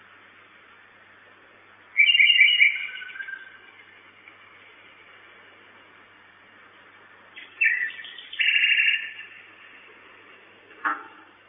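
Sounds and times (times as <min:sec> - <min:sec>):
common nightingale phrases at a nest box at night: 0:02.0 - 0:04.0, 0:07.4 - 0:09.5.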